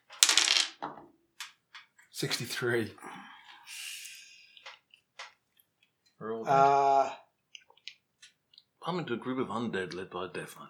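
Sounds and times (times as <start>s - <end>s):
dice clattering and rattling across a hard surface: 0.0s - 1.9s
speech: 2.2s - 3.8s, 6.5s - 7.2s, 8.9s - 10.6s.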